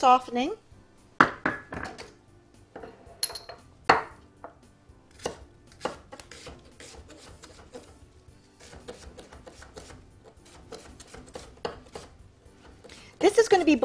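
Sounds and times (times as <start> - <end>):
speech: 0.0 - 0.6, 13.6 - 13.8
knife chopping an onion in a home kitchen: 5.1 - 8.0, 8.6 - 13.0.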